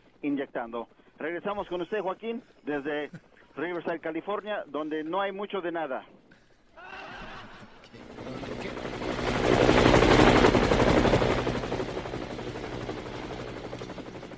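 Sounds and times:
speech: 0:00.2 - 0:06.2
laughter: 0:06.8 - 0:08.4
helicopter rotor thumping: 0:07.9 - 0:14.3.

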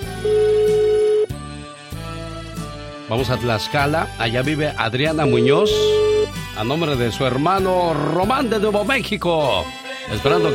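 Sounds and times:
ringback tone of an outgoing phone call: 0:00.0 - 0:01.4, 0:05.1 - 0:06.5, 0:10.3 - 0:10.5
music: 0:00.0 - 0:10.5
speech: 0:03.1 - 0:06.0, 0:06.6 - 0:10.5.

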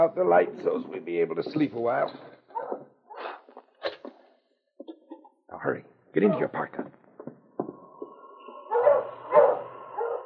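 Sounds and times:
speech: 0:00.0 - 0:02.9, 0:05.5 - 0:07.0
dogs barking and yipping: 0:02.5 - 0:02.9, 0:08.6 - 0:10.2
quiet thumps: 0:07.2 - 0:08.7.

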